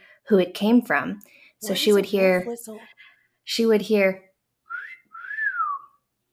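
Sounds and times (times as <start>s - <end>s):
speech: 0.3s - 4.3s
human-whistled wolf whistle: 4.7s - 6.0s.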